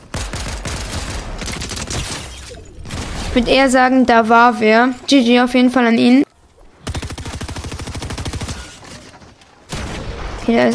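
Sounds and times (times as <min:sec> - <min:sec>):
rapid automatic gunfire in a video game match: 0:00.0 - 0:02.2, 0:06.8 - 0:09.1
speech: 0:03.4 - 0:06.2, 0:10.5 - 0:10.7.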